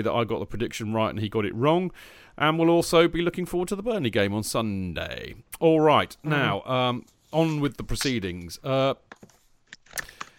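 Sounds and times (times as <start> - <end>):
speech: 0.0 - 10.1
faint computer keyboard clicks: 9.1 - 10.3.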